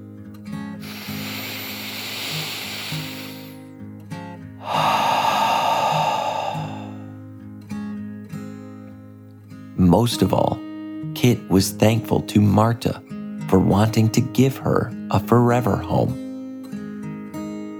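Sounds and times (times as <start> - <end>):
deep slow breath in and out: 0.8 - 3.7, 4.6 - 7.2
speech: 9.9 - 16.2.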